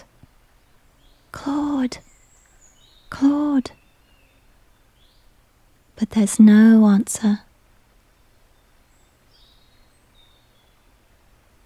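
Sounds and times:
faint birds chirping in a garden: 0:00.0 - 0:07.4, 0:08.4 - 0:11.6
steady hushed outdoor background: 0:00.0 - 0:11.6
speech: 0:06.1 - 0:07.5.

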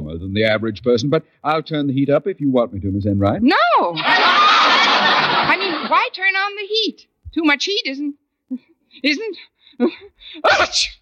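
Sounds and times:
speech: 0:00.2 - 0:04.4, 0:05.5 - 0:11.0
laughter: 0:04.0 - 0:06.1
person sneezing: 0:10.4 - 0:11.0.

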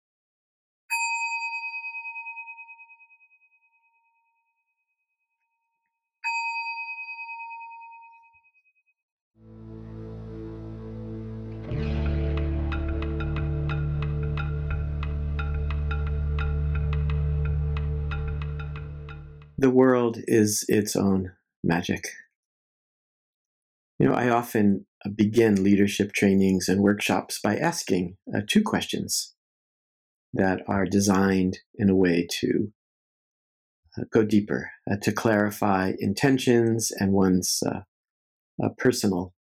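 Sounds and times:
meditation bell struck and ringing: 0:00.9 - 0:04.3, 0:06.3 - 0:08.5
dense music: 0:09.4 - 0:19.6
speech: 0:19.6 - 0:22.2, 0:24.0 - 0:29.4, 0:30.3 - 0:32.8, 0:34.0 - 0:37.9, 0:38.6 - 0:39.4.

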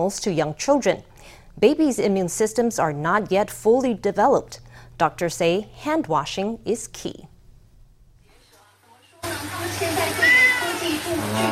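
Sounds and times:
speech: 0:00.0 - 0:07.3
steady hum: 0:00.0 - 0:10.2
10-month-old boy's voice: 0:09.9 - 0:11.2
domestic cat meowing: 0:10.2 - 0:10.9.

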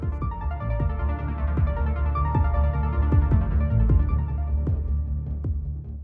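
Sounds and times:
low droning throbbing hum in the northwestern United States: 0:00.0 - 0:06.0.

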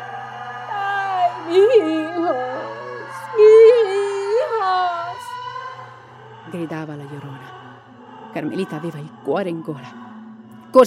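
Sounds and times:
woman crying and wailing: 0:00.7 - 0:05.3
speech: 0:01.5 - 0:02.8, 0:06.5 - 0:07.6, 0:08.4 - 0:10.0.

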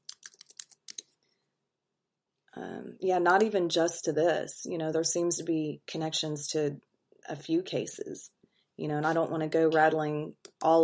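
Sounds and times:
typing on a computer keyboard: 0:00.0 - 0:01.1
speech: 0:02.6 - 0:10.8.

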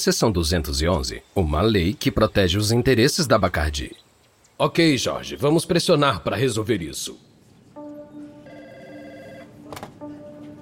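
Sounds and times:
speech: 0:00.0 - 0:07.3
telephone ringing with an incoming call: 0:07.8 - 0:09.7.

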